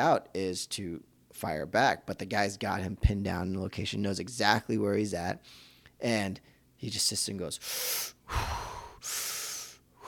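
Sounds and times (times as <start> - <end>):
speech: 0.0 - 9.3
man imitating slow controlled box breathing: 5.4 - 6.7, 7.6 - 10.0.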